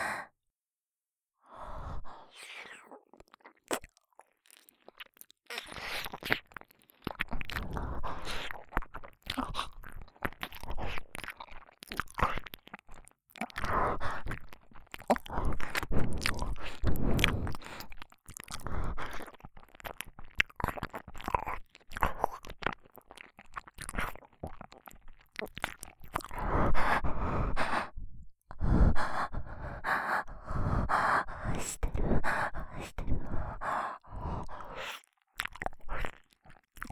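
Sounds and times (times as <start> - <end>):
soft breaths and sighs between mouthfuls: 0.0 - 0.3, 26.3 - 35.0
food being chewed during a meal: 2.4 - 27.9, 28.5 - 36.9.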